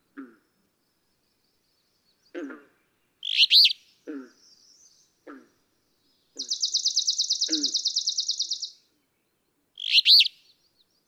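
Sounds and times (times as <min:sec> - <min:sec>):
alder flycatcher buzzy song: 0:00.6 - 0:05.2, 0:05.9 - 0:11.0
alder flycatcher low nasal calls: 0:03.2 - 0:05.2, 0:06.2 - 0:08.8, 0:09.8 - 0:11.0.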